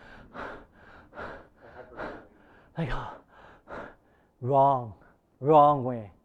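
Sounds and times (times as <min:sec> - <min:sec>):
person taking heavy gasping chest breaths: 0:00.0 - 0:04.4
speech: 0:02.8 - 0:03.2, 0:04.4 - 0:06.2.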